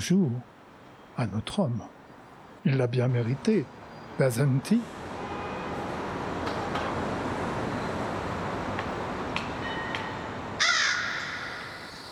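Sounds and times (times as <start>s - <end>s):
speech: 0.0s - 0.5s, 1.2s - 2.0s, 2.6s - 5.0s
steady hissing noise: 0.0s - 12.0s
raven cawing: 10.6s - 12.0s.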